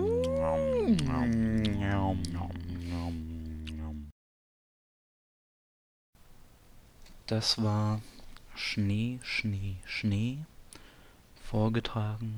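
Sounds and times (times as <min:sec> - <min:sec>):
long wavering wolf-like howl: 0:00.0 - 0:04.1
speech: 0:00.9 - 0:01.4, 0:07.3 - 0:10.5, 0:11.5 - 0:12.3.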